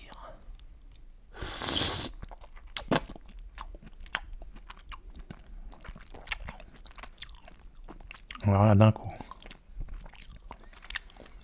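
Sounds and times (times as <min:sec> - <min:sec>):
loud wet slurp of a raw oyster: 0:01.4 - 0:03.1
soft irregular chewing and mouth noises: 0:01.8 - 0:11.4
speech: 0:08.5 - 0:09.3.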